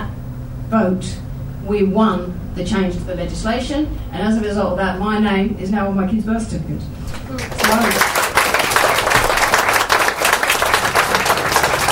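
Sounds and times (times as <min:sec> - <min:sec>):
speech: 0:00.7 - 0:08.0
studio audience applause: 0:07.2 - 0:11.9.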